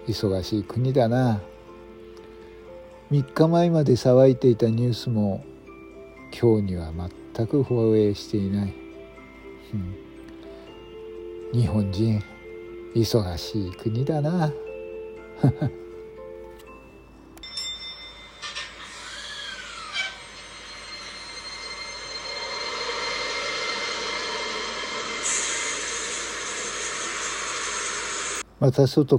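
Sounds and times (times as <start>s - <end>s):
speech: 0.0s - 1.5s, 3.1s - 5.5s, 6.3s - 8.8s, 9.7s - 10.0s, 11.5s - 12.3s, 12.9s - 14.6s, 15.4s - 15.8s, 28.6s - 29.1s
streetcar bell dings: 17.4s - 19.0s, 20.2s - 24.4s
streetcar electric motor whine: 18.9s - 28.4s.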